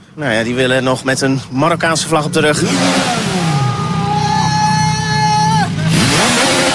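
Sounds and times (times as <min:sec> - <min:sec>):
street noise in Rotterdam city centre: 0:00.0 - 0:06.7
speech: 0:00.2 - 0:03.6
motorcycle engines revving past in Rotterdam city centre: 0:01.6 - 0:06.7
crowd murmur in Rotterdam city centre: 0:02.5 - 0:06.4.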